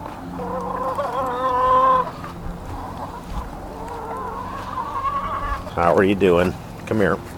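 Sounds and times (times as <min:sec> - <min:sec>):
chickens clucking and squawking: 0:00.0 - 0:06.8
speech: 0:05.8 - 0:07.3.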